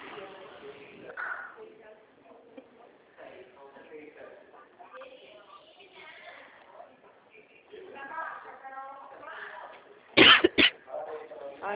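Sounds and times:
quiet murmured talking: 0.0s - 11.7s
sharp loud coughs: 10.2s - 10.8s.

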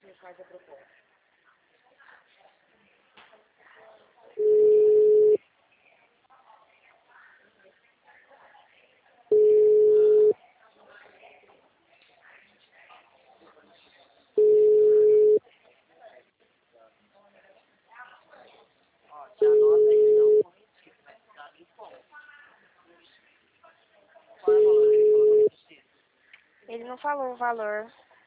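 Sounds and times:
faint talk: 0.0s - 28.2s
speech: 0.3s - 1.0s, 26.8s - 28.1s
telephone busy signal beeps: 4.4s - 5.4s, 9.3s - 10.3s, 14.4s - 15.4s, 19.4s - 20.4s, 24.5s - 25.5s.

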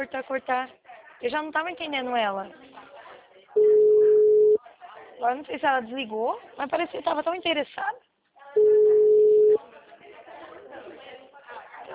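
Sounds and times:
speech: 0.0s - 2.9s, 5.2s - 8.8s
telephone ringback tone while placing a call: 3.6s - 4.6s, 8.6s - 9.6s.

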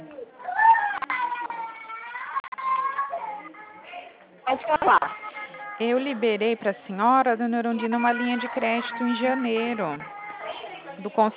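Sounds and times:
young girl crying: 0.4s - 5.5s, 7.8s - 11.0s
speech: 4.5s - 5.2s, 5.8s - 10.2s, 11.0s - 11.3s.

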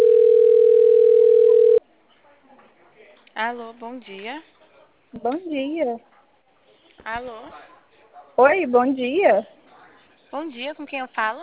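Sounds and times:
telephone ringing with an incoming call: 0.0s - 1.8s
speech: 3.4s - 6.1s, 7.0s - 7.7s, 8.4s - 9.6s, 10.3s - 11.4s.

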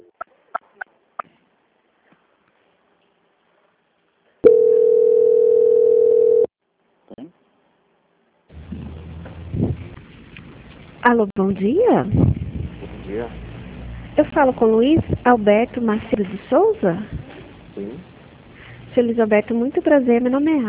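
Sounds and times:
telephone call transfer tone: 4.4s - 6.5s
speech: 11.1s - 12.3s, 13.1s - 13.5s, 14.2s - 17.2s, 19.0s - 20.6s.

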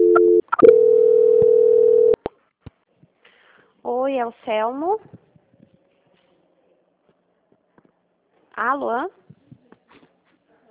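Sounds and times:
telephone line tones during a call transfer: 0.0s - 2.2s
speech: 4.1s - 5.2s, 8.6s - 9.2s.

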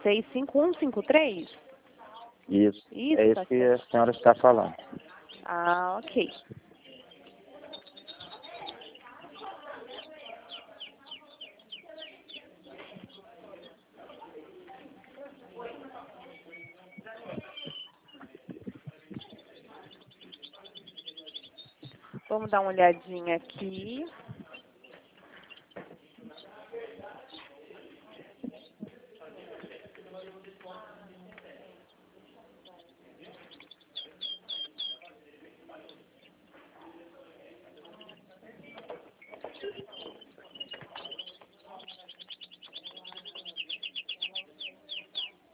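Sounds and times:
speech: 0.0s - 1.6s, 2.5s - 6.6s, 22.3s - 24.3s
Belgian canaries chirping and trilling: 0.0s - 45.5s.

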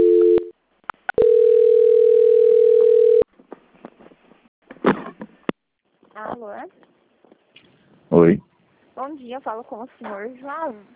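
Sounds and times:
telephone line tone while a call is transferred: 0.0s - 0.5s, 1.2s - 3.2s
speech: 8.2s - 10.9s.

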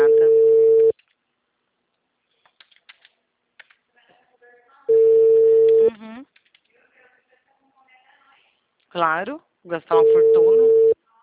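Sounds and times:
outgoing phone call ringback tone: 0.0s - 0.9s, 4.9s - 5.9s, 10.0s - 11.0s
speech: 9.0s - 10.8s.

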